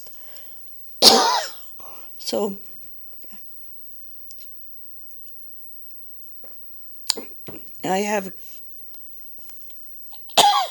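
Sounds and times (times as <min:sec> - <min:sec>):
person with a coughing problem coughing: 0:01.0 - 0:01.6, 0:10.4 - 0:10.6
speech: 0:02.3 - 0:02.7, 0:07.8 - 0:08.6.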